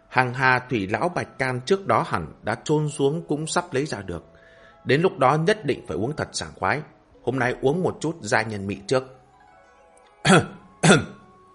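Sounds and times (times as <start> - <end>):
speech: 0.2 - 9.2, 10.2 - 11.1
man coughing: 10.3 - 11.2.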